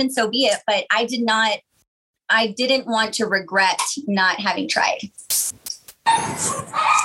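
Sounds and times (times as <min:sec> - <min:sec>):
speech: 0:00.0 - 0:01.7, 0:02.3 - 0:07.0
dogs barking: 0:06.1 - 0:07.0.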